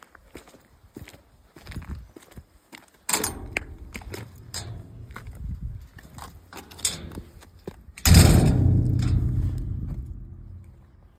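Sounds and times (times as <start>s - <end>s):
exit wicket gate: 3.1s - 5.3s, 6.5s - 7.3s, 8.0s - 11.0s.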